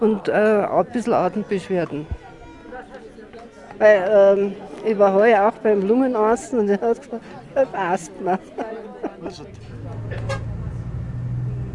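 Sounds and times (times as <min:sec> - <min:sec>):
speech: 0:00.0 - 0:02.3, 0:03.8 - 0:10.4
laughter: 0:07.1 - 0:10.3
bus engine drone inside a moving bus on the Altiplano: 0:09.3 - 0:11.7
road rumble inside a moving bus from Cusco to Puno: 0:09.3 - 0:11.7.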